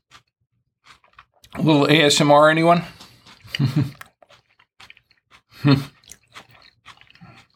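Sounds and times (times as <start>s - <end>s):
crunchy chewing of a fresh homemade salad: 0.0s - 7.5s
speech: 1.6s - 3.0s, 3.6s - 4.0s, 5.6s - 6.0s.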